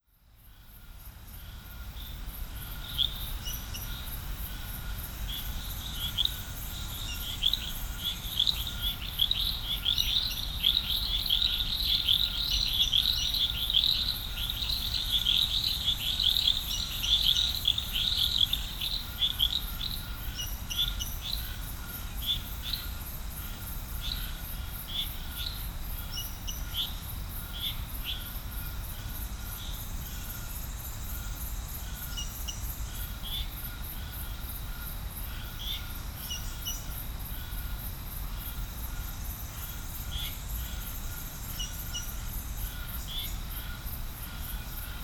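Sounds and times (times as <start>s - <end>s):
frog chorus in Serrinha do Alambari Brazil: 0.5s - 45.0s.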